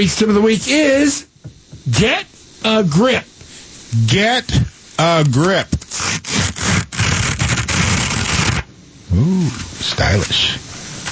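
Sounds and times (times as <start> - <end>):
speech: 0.0 - 1.3, 1.9 - 3.3, 3.9 - 6.2, 9.1 - 10.6
wrapping paper tearing slowly: 5.2 - 8.7.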